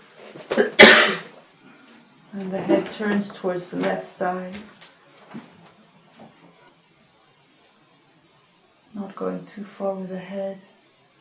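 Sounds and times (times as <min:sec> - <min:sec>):
person coughing: 0:00.5 - 0:01.3
speech: 0:02.4 - 0:05.5, 0:09.2 - 0:10.7.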